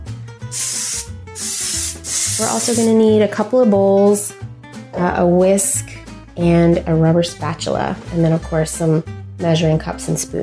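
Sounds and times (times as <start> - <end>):
speech: 0.5 - 0.8, 2.4 - 4.3, 5.0 - 5.8, 6.4 - 10.4
cooking spray sprayed onto a metal half sheet pan: 0.5 - 2.9.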